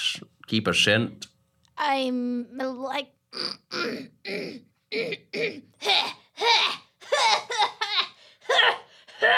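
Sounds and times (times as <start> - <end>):
speech: 0.5 - 6.6
harsh voiced coughs: 3.4 - 9.3
throat-clearing hacks: 3.4 - 9.3.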